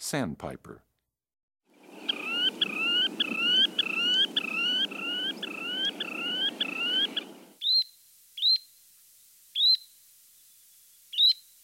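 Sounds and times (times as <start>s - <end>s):
Semipalmated Sandpiper calling: 1.8s - 8.7s.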